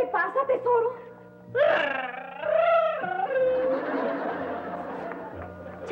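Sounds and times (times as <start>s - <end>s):
speech: 0.1s - 2.3s
child wailing and sobbing: 1.5s - 3.8s
laughter: 3.0s - 5.8s.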